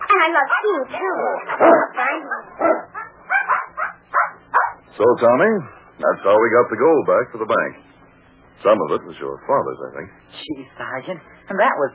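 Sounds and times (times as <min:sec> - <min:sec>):
speech: 0:00.1 - 0:02.8, 0:05.0 - 0:07.8, 0:08.6 - 0:11.9
puppy barking and yipping: 0:00.5 - 0:04.8.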